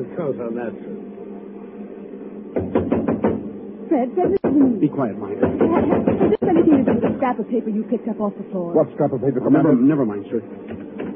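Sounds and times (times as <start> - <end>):
speech: 0.0 - 1.1, 3.9 - 10.8
knuckles rapping on a door: 2.6 - 3.5, 4.2 - 7.4.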